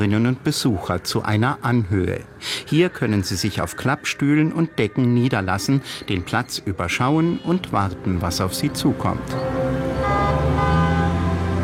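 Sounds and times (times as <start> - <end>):
speech: 0.0 - 9.8
tuned cars pulling up at an art festival in Weimar: 8.6 - 11.6
car horn blaring from tuned-up cars at an art festival in Weimar: 9.8 - 11.4.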